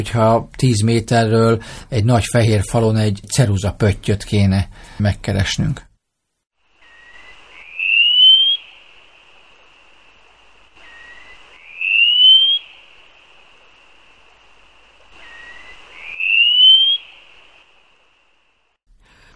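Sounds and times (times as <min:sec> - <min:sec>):
speech: 0:00.0 - 0:05.9
wallcreeper calling thin high upward-sliding whistles: 0:06.8 - 0:09.0, 0:10.8 - 0:13.0, 0:15.1 - 0:17.6.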